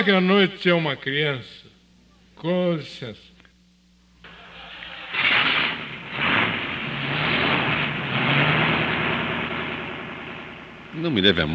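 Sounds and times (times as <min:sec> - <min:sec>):
speech: 0:00.0 - 0:01.7, 0:02.4 - 0:03.3, 0:11.0 - 0:11.5
car engine starting and running: 0:04.2 - 0:11.5.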